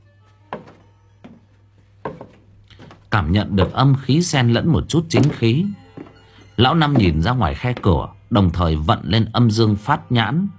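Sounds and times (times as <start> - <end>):
footsteps on the wooden floor of a hut: 0.4 - 8.2
soft knock: 2.1 - 3.0
speech: 3.1 - 5.8, 6.6 - 10.5.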